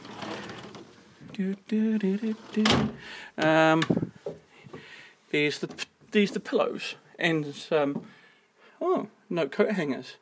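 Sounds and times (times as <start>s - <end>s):
sliding wardrobe doors rolling open with squeaks and grinding: 0.0s - 1.2s, 2.2s - 4.0s
speech: 1.4s - 4.1s, 5.3s - 8.2s, 8.8s - 10.2s.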